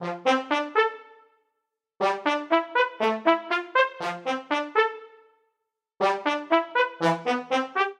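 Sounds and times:
brass quartet phrase in A minor at 120 bpm: 0:00.0 - 0:01.1, 0:02.0 - 0:05.2, 0:06.0 - 0:07.9.

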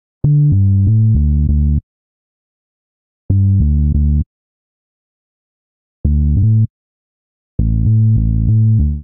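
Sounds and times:
D minor bassline at 85 bpm: 0:00.2 - 0:01.8, 0:03.3 - 0:04.3, 0:06.0 - 0:06.7, 0:07.6 - 0:09.0.

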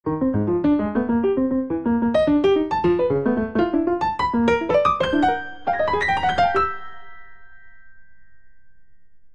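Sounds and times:
monophonic grand piano phrase: 0:00.0 - 0:09.0.

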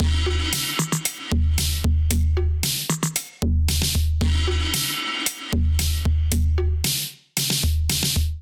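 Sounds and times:
MIDI drum kit playing: 0:00.0 - 0:08.4.

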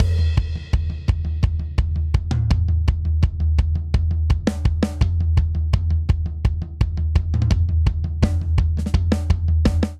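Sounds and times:
rock drum buildup in seven-eight time: 0:00.0 - 0:09.9.

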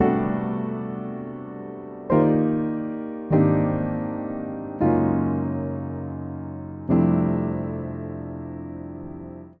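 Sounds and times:
upright piano chord progression: 0:00.0 - 0:09.5.

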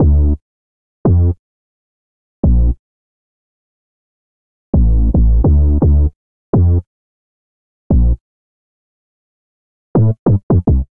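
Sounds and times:
sub bassline in D minor: 0:00.0 - 0:00.4, 0:01.1 - 0:01.4, 0:02.5 - 0:02.8, 0:04.8 - 0:06.8, 0:07.9 - 0:08.2, 0:10.0 - 0:10.8.

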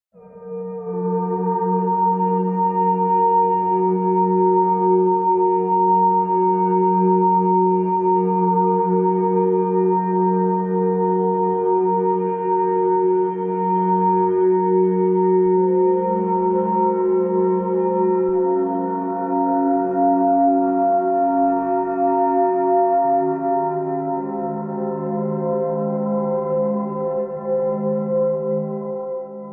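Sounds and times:
atmospheric tonal music in F sharp major: 0:00.2 - 0:29.5.

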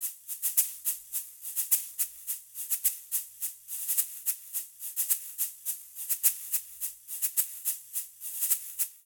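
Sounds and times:
charanga cha cha cha shaker rhythm: 0:00.0 - 0:09.0.

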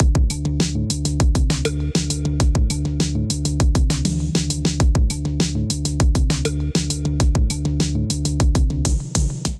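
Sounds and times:
melodic drum kit at 100 bpm: 0:00.0 - 0:09.5.

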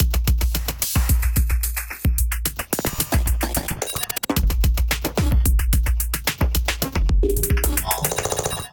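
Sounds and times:
drum kit groove: 0:00.0 - 0:08.7.

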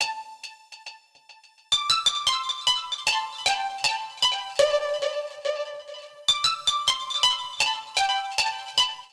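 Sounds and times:
pipe melody with delay in C major: 0:00.0 - 0:09.1.

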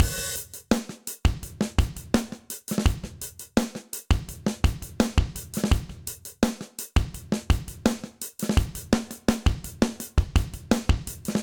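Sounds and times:
session drums in a bright room: 0:00.0 - 0:11.4.

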